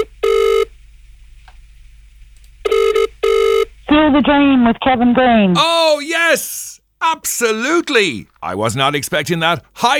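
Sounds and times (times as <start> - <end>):
electronic telephone ring tone: 0.0 - 0.7, 2.6 - 3.7
speech: 3.9 - 9.9.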